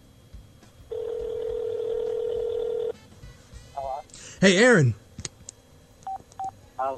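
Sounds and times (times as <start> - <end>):
faint hum: 0.0 - 6.9
telephone tone from a call being placed: 0.9 - 3.0
speech: 4.4 - 5.0.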